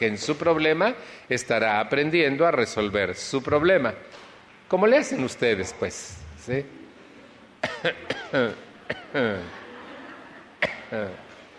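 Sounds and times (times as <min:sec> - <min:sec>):
speech: 0:00.0 - 0:06.8, 0:07.8 - 0:09.6, 0:10.6 - 0:11.3
laughter: 0:07.2 - 0:11.5
person coughing in short raspy bursts: 0:07.6 - 0:09.5, 0:10.6 - 0:11.1.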